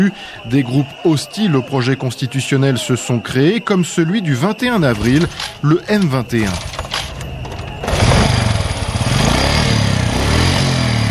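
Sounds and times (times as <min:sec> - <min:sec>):
speech: 0:00.0 - 0:06.8
small scooter engine running and revving: 0:06.6 - 0:11.1.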